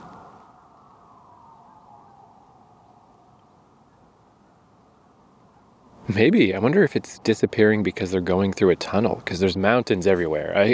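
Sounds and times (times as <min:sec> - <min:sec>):
police siren wailing outside in northern Seoul South Korea: 0:00.0 - 0:03.3
speech: 0:06.1 - 0:10.7.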